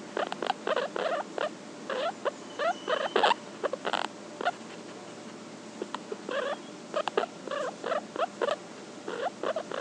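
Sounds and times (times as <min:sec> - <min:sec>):
steady faint hum: 0:00.0 - 0:09.7
guinea pig mumbling with grunting and chuckling notes: 0:00.2 - 0:05.2, 0:05.8 - 0:09.7.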